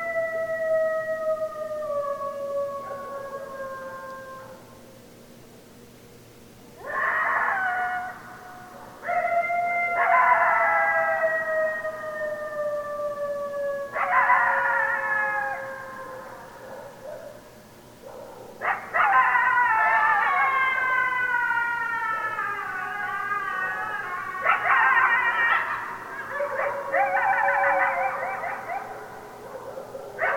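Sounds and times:
several coyotes howling in chorus: 0.0 - 4.9, 6.8 - 30.3.

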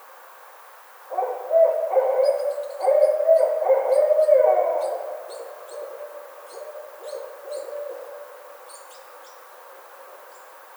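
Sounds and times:
barred owl loud wavering hoots and drawn wails: 1.2 - 8.3.

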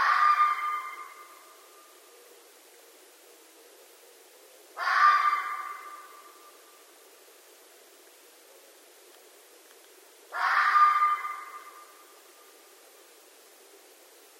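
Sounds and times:
red fox giving harsh rasping screams at night: 0.0 - 1.2, 4.8 - 6.1, 10.3 - 11.7.

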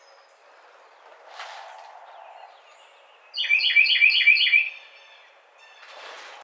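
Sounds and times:
Carolina wren singing ringing, rolling phrases: 0.0 - 5.8
faint rustling: 0.1 - 2.7.

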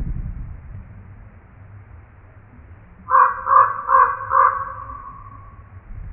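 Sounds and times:
low background rumble: 0.0 - 6.1
common raven croaking harshly: 3.0 - 5.8.

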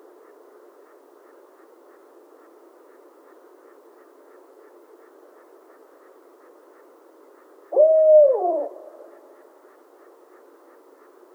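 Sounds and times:
soft hiss: 0.0 - 11.3
barred owl hoot: 7.7 - 9.5.

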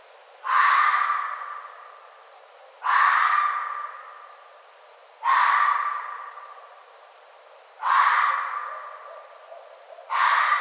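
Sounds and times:
red fox giving loud raspy barks: 0.4 - 1.8, 2.8 - 4.2, 5.2 - 6.7, 7.8 - 10.6.

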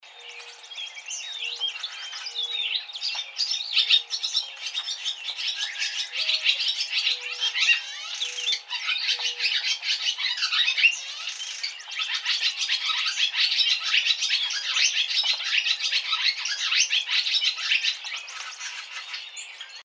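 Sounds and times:
barn swallow calling: 0.0 - 19.8.

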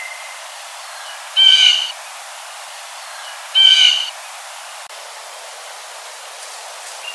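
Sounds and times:
Blue jay harsh nasal calls: 1.4 - 1.9, 3.6 - 4.1.

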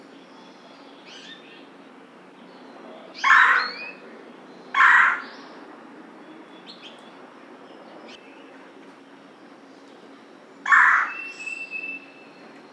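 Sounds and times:
red-bellied woodpecker calling with rough rolling kwirr notes: 3.2 - 4.0, 4.8 - 5.3, 10.7 - 12.1.

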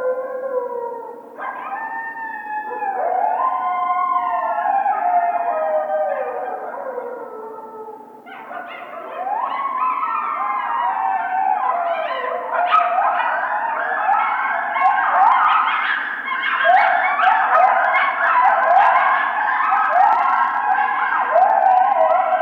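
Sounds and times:
coyotes howling in chorus with yips and barks: 0.0 - 22.4.

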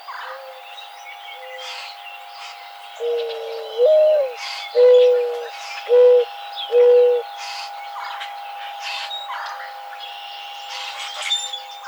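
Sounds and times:
mourning dove soft low coo: 3.0 - 7.3.

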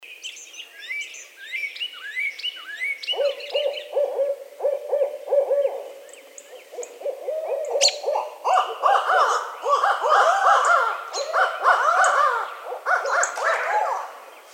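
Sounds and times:
barred owl hooting: 2.7 - 14.1.

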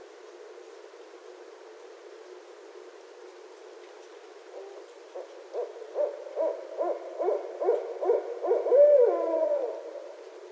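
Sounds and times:
barred owl hoots: 4.5 - 10.2.

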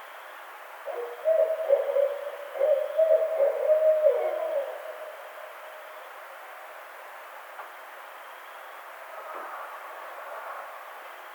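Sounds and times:
barred owl hooting: 0.9 - 5.4.

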